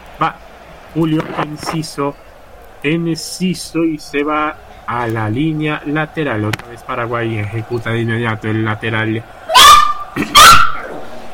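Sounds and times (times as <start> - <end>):
speech: 0.2 - 9.4
dog yipping at a football match without spectators: 9.5 - 11.0.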